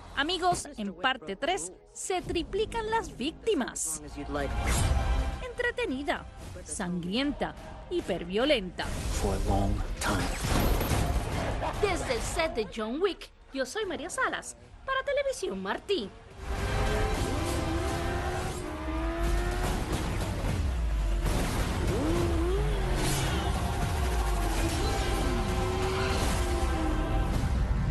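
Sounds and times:
speech: 0:00.2 - 0:05.0, 0:05.6 - 0:10.6, 0:11.6 - 0:16.6
motorcycle engine revving: 0:16.3 - 0:27.8.

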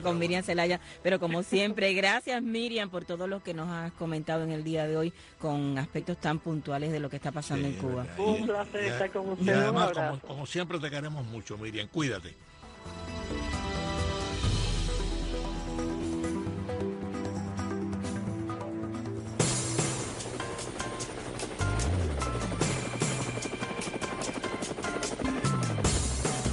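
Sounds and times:
speech: 0:00.0 - 0:13.4
busy layered musical backdrop: 0:12.6 - 0:26.5
helicopter rotor blades thumping: 0:19.4 - 0:26.5.

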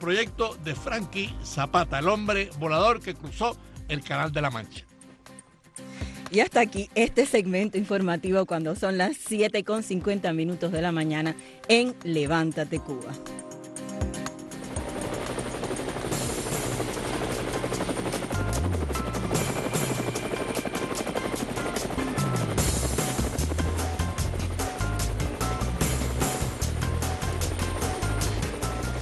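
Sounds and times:
speech: 0:00.0 - 0:04.9, 0:06.3 - 0:13.5
helicopter rotor thudding chop with engine roar: 0:14.5 - 0:29.0.

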